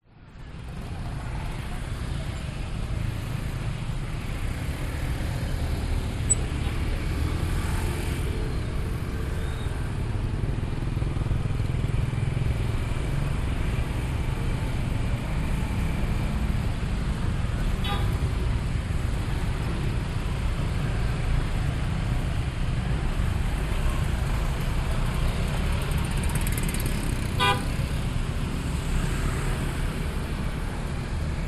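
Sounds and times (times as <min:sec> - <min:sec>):
traffic at the Ubud palace main intersection in Indonesia: 0:00.0 - 0:31.4
motorcycles at the Ubud palace main intersection in Indonesia: 0:00.2 - 0:31.4.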